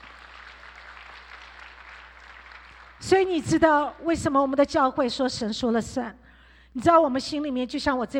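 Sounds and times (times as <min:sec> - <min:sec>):
audience applauding: 0:00.0 - 0:03.0
speech: 0:03.0 - 0:06.2, 0:06.8 - 0:08.1.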